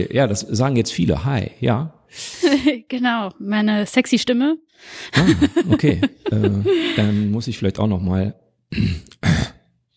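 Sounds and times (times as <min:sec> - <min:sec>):
speech: 0:00.0 - 0:09.4
laughter: 0:05.2 - 0:07.4
short rough throat clearing: 0:08.7 - 0:09.6.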